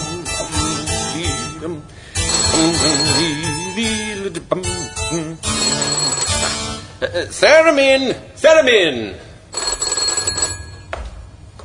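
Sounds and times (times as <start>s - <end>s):
speech: 1.6s - 2.0s, 2.6s - 6.1s, 7.0s - 9.6s
telephone bell ringing: 2.2s - 3.8s, 5.5s - 6.7s, 9.5s - 10.9s.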